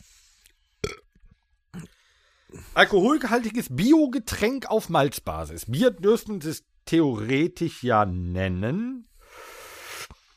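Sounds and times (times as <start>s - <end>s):
person burping after drinking strongly carbonated natural mineral water: 0.8s - 1.1s, 1.7s - 2.0s
speech: 2.8s - 9.1s.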